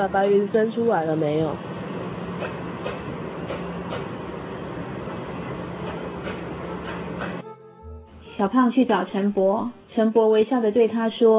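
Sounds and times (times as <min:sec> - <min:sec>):
speech: 0:00.0 - 0:01.7, 0:02.4 - 0:03.2, 0:08.4 - 0:11.3
train rolling along the rails: 0:00.0 - 0:07.4.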